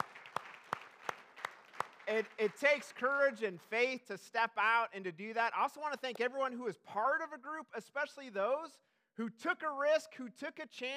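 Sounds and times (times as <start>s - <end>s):
audience applause: 0.0s - 3.3s
sharp claps: 0.0s - 3.7s
speech: 2.1s - 10.9s.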